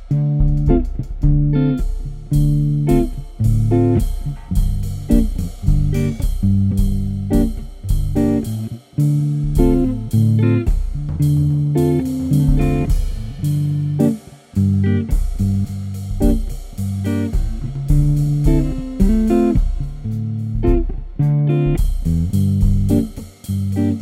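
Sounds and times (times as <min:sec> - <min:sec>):
Stratocaster electric guitar playing jazz: 0:00.1 - 0:24.0.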